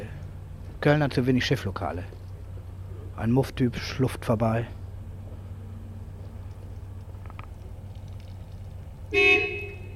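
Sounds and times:
speech: 0.8 - 2.2, 3.2 - 4.8
car horn honk: 9.1 - 9.9.

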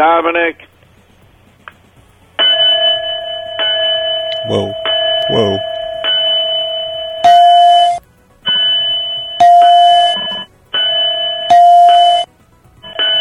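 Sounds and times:
speech: 0.0 - 0.7, 4.5 - 5.7
electronic bell ringing: 2.4 - 13.1.

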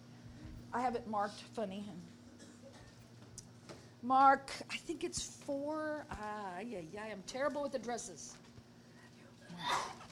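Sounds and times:
speech: 0.7 - 2.2, 4.0 - 8.4, 9.5 - 10.0
person sneezing: 9.6 - 10.1.

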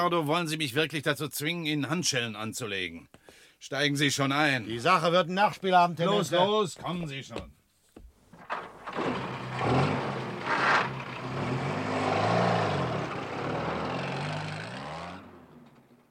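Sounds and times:
speech: 0.0 - 7.6
jeep engine droning while driving along a lonely road: 8.6 - 16.0.

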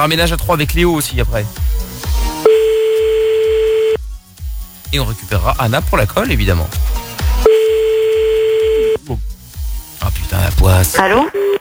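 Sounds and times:
speech: 0.0 - 1.9, 4.9 - 6.9, 9.1 - 9.3, 10.0 - 11.5
ringback tone of an unanswered phone call: 2.5 - 4.0, 7.5 - 9.0.

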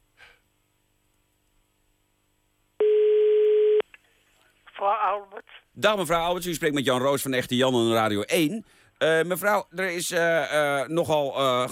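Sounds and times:
telephone ringback tone while calling a neighbour: 2.8 - 3.8
speech: 4.8 - 11.6.

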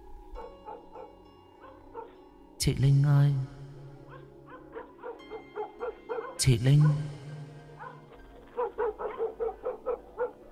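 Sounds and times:
yellow dog barking: 0.4 - 2.2, 4.1 - 7.2, 7.8 - 10.4
speech: 2.6 - 3.6, 6.4 - 7.2.

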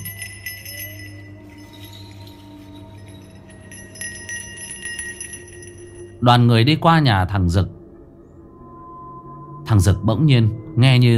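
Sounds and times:
bell tied to an old persimmon tree ringing on a windless day: 0.0 - 6.5
speech: 6.2 - 7.8, 9.7 - 11.1.

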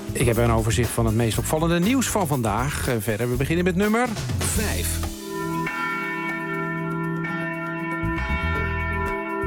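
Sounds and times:
speech: 0.2 - 5.2
church bells ringing from a Reformed church in a South Holland village: 5.2 - 9.4.

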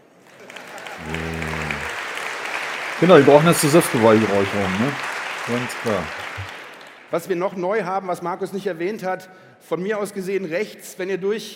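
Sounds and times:
audience clapping at a live show: 0.0 - 7.1
speech: 3.0 - 6.5, 7.1 - 11.5.

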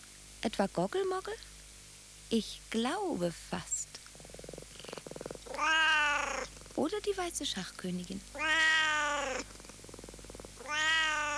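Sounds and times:
speech: 0.4 - 1.5, 2.3 - 4.0, 6.8 - 9.6
kitten meowing: 5.5 - 6.5, 8.3 - 9.5, 10.6 - 11.3.

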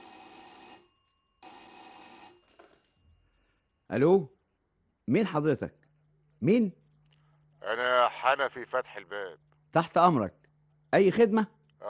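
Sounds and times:
home telephone bell ringing: 0.0 - 3.6
speech: 3.9 - 4.4, 5.1 - 5.8, 6.4 - 6.8, 7.6 - 11.8.

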